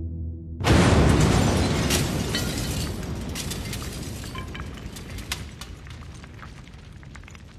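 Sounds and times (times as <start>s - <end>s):
low hum: 0.0s - 1.0s
bomb in a wastepaper bin exploding with a dull boom: 0.6s - 7.2s
scattered crackling debris: 0.7s - 7.5s.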